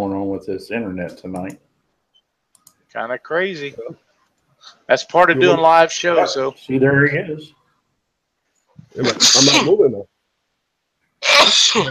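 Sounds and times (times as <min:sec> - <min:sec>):
speech: 0:00.0 - 0:01.7, 0:02.9 - 0:04.0, 0:04.6 - 0:07.6, 0:08.9 - 0:10.1, 0:11.2 - 0:11.8
loud sneeze: 0:09.0 - 0:09.8, 0:11.2 - 0:11.8.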